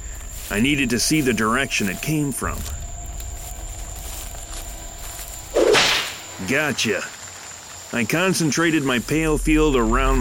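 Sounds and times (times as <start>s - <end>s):
speech: 0.5s - 2.8s, 6.4s - 7.2s, 7.9s - 10.2s
whip lashing through the air: 5.6s - 6.2s.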